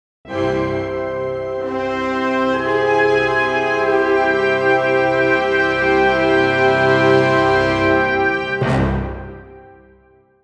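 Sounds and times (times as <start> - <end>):
classical orchestra finale for audio branding: 0.3 - 10.2.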